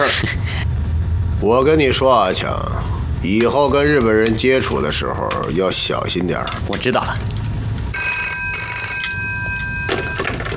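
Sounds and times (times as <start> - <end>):
low noise: 0.0 - 10.5
speech: 1.4 - 7.4
telephone ringing with a high electronic trill: 7.9 - 10.5.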